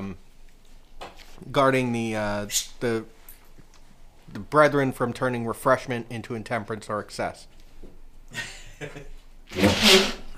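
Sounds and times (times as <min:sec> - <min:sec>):
speech: 0:01.4 - 0:03.2, 0:04.3 - 0:07.6, 0:08.3 - 0:10.2
sneeze: 0:09.5 - 0:10.3.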